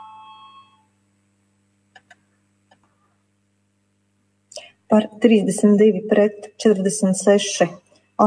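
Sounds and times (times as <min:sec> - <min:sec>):
parliamentary voting bell electronic tone: 0:00.0 - 0:00.9
speech: 0:04.9 - 0:08.2.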